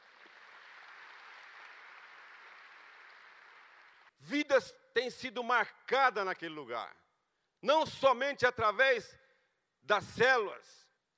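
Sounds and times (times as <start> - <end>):
crowd applauding in praise: 0.0 - 4.1
speech: 4.2 - 7.0, 7.6 - 9.2, 9.8 - 10.8.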